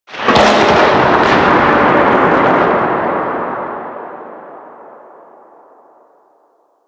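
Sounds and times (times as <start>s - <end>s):
thunder: 0.1s - 6.6s.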